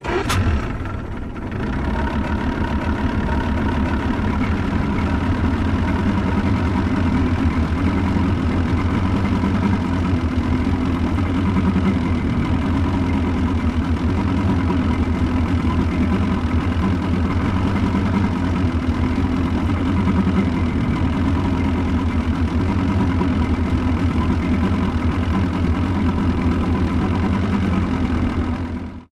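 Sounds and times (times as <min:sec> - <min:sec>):
motorboat starting and idling: 0:00.0 - 0:29.0.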